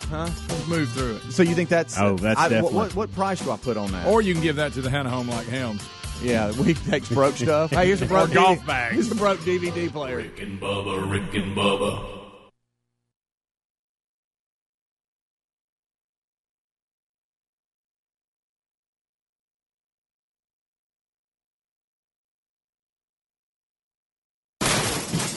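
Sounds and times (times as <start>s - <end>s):
speech: 0.1s - 12.2s
laughter: 6.3s - 9.7s
old dehumidifiers being thrown out and crashing: 24.6s - 25.3s.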